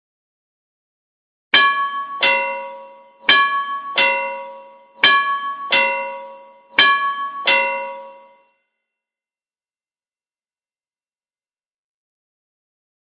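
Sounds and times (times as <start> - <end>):
station bell: 1.6 - 8.7.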